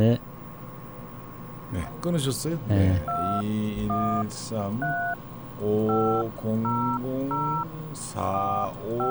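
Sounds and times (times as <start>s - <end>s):
speech: 0.0s - 0.3s, 1.7s - 9.1s
two-tone telephone keypad dialing beeps: 3.1s - 5.2s, 5.8s - 7.7s, 9.0s - 9.1s.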